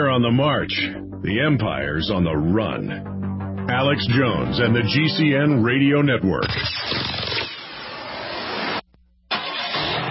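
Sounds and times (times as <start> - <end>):
speech: 0.0 - 6.9
car engine starting and roaring: 6.4 - 10.0.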